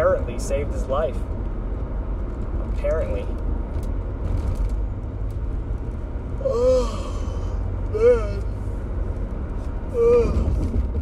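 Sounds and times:
steady low rumble: 0.0 - 10.9
speech: 0.4 - 1.4, 2.8 - 4.7, 6.4 - 7.1, 7.9 - 8.4, 10.0 - 10.8
person giving a short voiced yawn: 6.4 - 8.5, 9.9 - 10.5.

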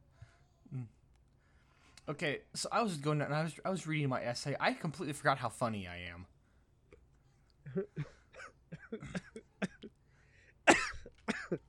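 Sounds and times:
speech: 0.7 - 1.0, 2.1 - 6.4, 7.7 - 8.1
person coughing and choking on breath: 7.7 - 10.0, 10.7 - 11.6.

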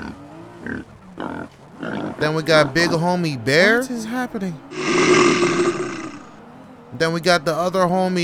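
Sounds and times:
boar grunting: 0.0 - 3.0, 4.7 - 6.4
speech: 0.6 - 1.0, 2.2 - 5.9, 7.0 - 8.2.

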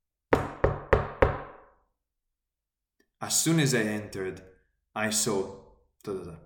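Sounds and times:
knocking on a wooden surface: 0.3 - 1.6
speech: 3.2 - 6.4.

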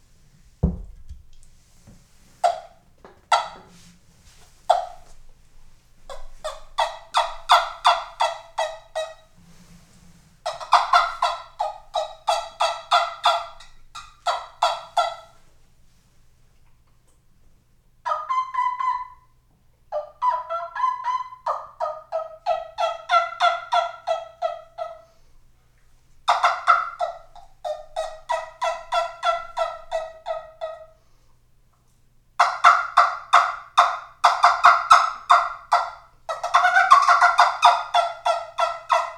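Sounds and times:
handheld turkey call imitating a turkey: 6.1 - 9.2, 10.4 - 15.3, 18.0 - 19.2, 19.9 - 25.0, 26.3 - 31.0, 32.4 - 39.1.

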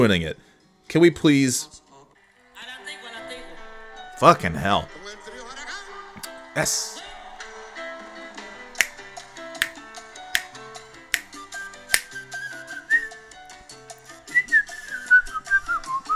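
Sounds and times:
speech: 0.0 - 1.8, 4.2 - 5.1, 6.6 - 7.0
music: 0.0 - 16.1
person whistling a wavering sliding melody: 12.0 - 13.4, 14.3 - 16.1.

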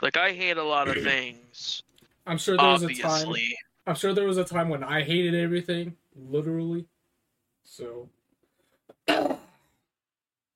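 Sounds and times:
speech: 0.0 - 6.9, 7.6 - 8.2, 9.1 - 9.4
single harsh cough: 9.0 - 9.6.

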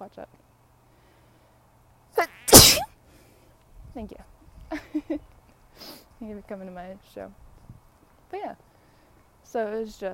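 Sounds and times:
speech: 0.0 - 0.5, 4.0 - 5.3, 6.2 - 7.4, 8.3 - 8.6, 9.5 - 10.1
person sneezing loudly: 2.4 - 2.9.

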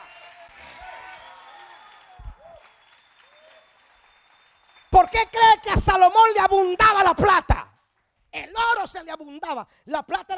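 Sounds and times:
people shouting and cheering: 0.0 - 3.6
congregation applauding: 0.0 - 5.7
speech: 5.1 - 7.6, 8.4 - 10.3.

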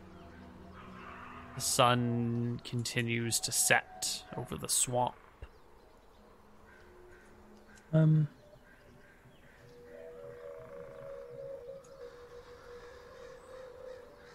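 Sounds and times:
speech: 1.6 - 5.2, 7.9 - 8.4
crow cawing at sunset over a swamp: 6.6 - 14.3.

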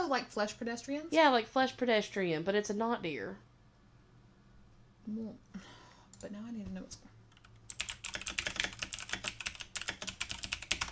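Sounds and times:
speech: 0.1 - 3.5, 5.0 - 7.1
loud clicky computer keyboard typing: 7.3 - 10.9.

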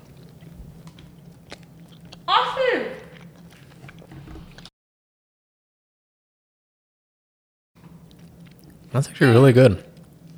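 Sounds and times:
person biting and chewing a cookie against the microphone: 0.0 - 4.7, 7.8 - 10.3
speech: 8.9 - 9.9.

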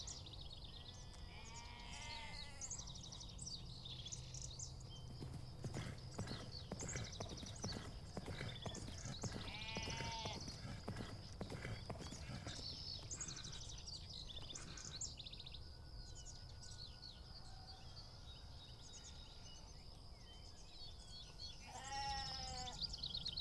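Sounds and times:
bird calls: 0.0 - 19.7, 20.6 - 23.3
outdoor ambience: 0.0 - 23.3
sheep bleating: 1.2 - 2.7, 9.2 - 10.4, 21.6 - 22.8
horse galloping with rhythmic hoofbeats: 4.9 - 13.6.

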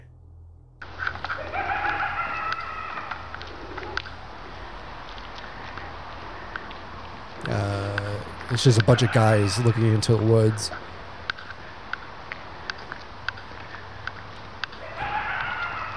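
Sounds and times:
pack of coyotes yipping and howling: 0.8 - 6.8, 7.7 - 15.9
outdoor hiss: 0.8 - 15.9
speech: 8.5 - 10.9.

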